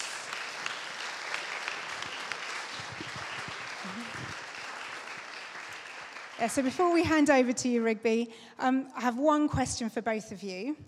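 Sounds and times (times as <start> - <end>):
crowd applause: 0.0 - 6.8
speech: 6.4 - 10.8.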